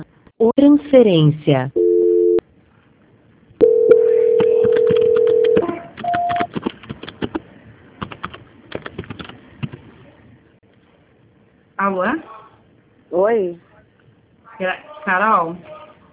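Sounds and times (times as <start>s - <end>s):
speech: 0.0s - 1.8s, 13.3s - 13.6s, 14.6s - 15.7s
telephone voicemail beep tones: 1.8s - 2.4s, 3.6s - 6.5s.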